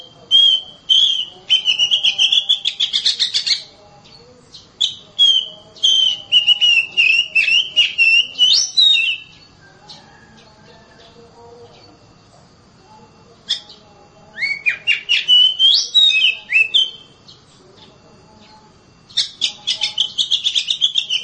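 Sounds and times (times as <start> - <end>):
Oriental magpie-robin song of chattered notes and whistles: 0.0 - 3.7, 4.4 - 10.0, 14.4 - 17.4, 19.1 - 21.2.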